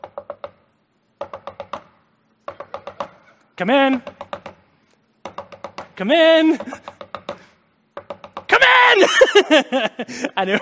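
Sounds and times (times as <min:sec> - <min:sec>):
boy knocking on an office door: 0:00.0 - 0:00.6, 0:01.2 - 0:01.9, 0:02.5 - 0:03.2, 0:04.0 - 0:04.6, 0:05.2 - 0:08.5
speech: 0:03.6 - 0:04.2, 0:06.0 - 0:06.9, 0:09.1 - 0:10.6
laughter: 0:09.0 - 0:10.6.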